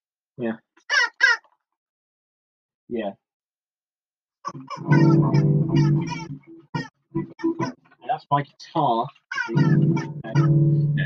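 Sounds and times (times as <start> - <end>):
speech: 0.4 - 1.0, 2.9 - 3.2, 4.5 - 11.0
pet parrot squawking loudly: 0.8 - 1.6, 4.4 - 8.0, 9.2 - 10.6.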